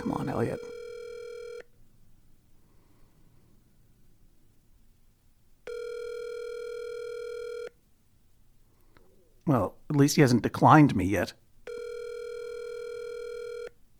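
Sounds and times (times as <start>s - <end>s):
outgoing phone call ringback tone: 0.0s - 1.7s, 5.7s - 7.8s, 11.7s - 13.8s
speech: 0.3s - 0.8s, 9.5s - 11.4s.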